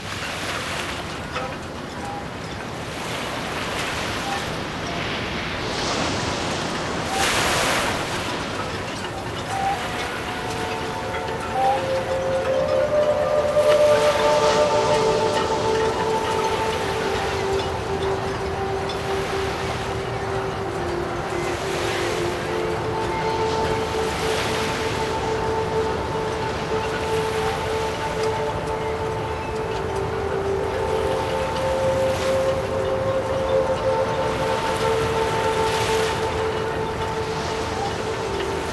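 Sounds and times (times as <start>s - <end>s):
harbour ambience: 0.0s - 38.7s.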